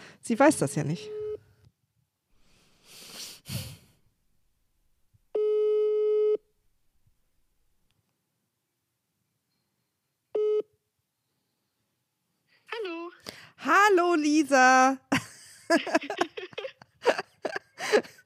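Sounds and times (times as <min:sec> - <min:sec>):
speech: 0:00.3 - 0:01.2, 0:14.2 - 0:15.0, 0:15.7 - 0:16.4, 0:17.9 - 0:18.2
mobile phone ringback tone: 0:05.4 - 0:06.4, 0:10.4 - 0:10.7
laughter: 0:15.1 - 0:18.2.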